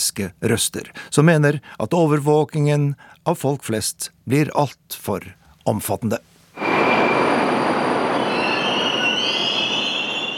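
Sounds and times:
speech: 0:00.1 - 0:06.7
high-pitched metro train wheel squeal: 0:06.6 - 0:10.3
metro train rushing into an underground station: 0:06.6 - 0:10.3.

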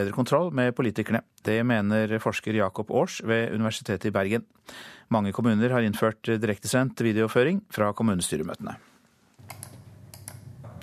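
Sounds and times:
speech: 0:00.0 - 0:08.9
computer keyboard typing: 0:09.4 - 0:10.8
computer mouse clicking: 0:09.4 - 0:10.8.

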